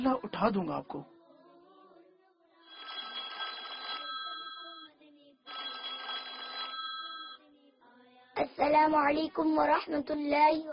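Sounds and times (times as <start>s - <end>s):
speech: 0.0s - 1.2s, 8.6s - 10.7s
telephone ringback tone of an outgoing call: 2.7s - 4.9s, 5.5s - 7.4s.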